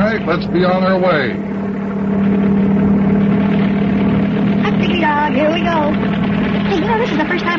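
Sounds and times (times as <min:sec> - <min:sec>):
helicopter engine droning: 0:00.0 - 0:07.5
indistinct voices talking: 0:00.0 - 0:07.5
speech: 0:00.2 - 0:02.9, 0:05.2 - 0:07.5.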